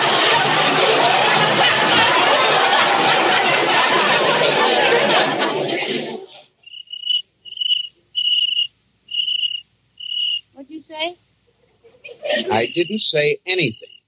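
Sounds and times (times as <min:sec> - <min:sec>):
laughter: 0:00.0 - 0:06.6, 0:11.5 - 0:13.8
cricket chirping in a house: 0:06.6 - 0:14.0
speech: 0:12.6 - 0:13.9.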